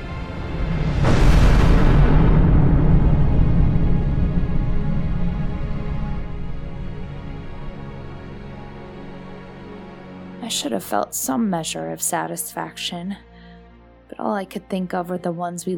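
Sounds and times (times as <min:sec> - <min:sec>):
deep heavy roaring rumble of space station explosion: 0:00.4 - 0:08.1
space station exploding: 0:00.6 - 0:06.3
speech: 0:10.6 - 0:13.3, 0:14.2 - 0:15.7.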